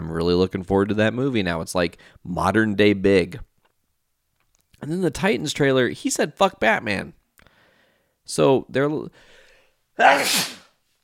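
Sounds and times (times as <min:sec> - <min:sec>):
speech: 0:00.2 - 0:03.5, 0:04.8 - 0:07.2, 0:08.3 - 0:09.4, 0:10.0 - 0:10.6
loud sneeze: 0:10.0 - 0:10.8.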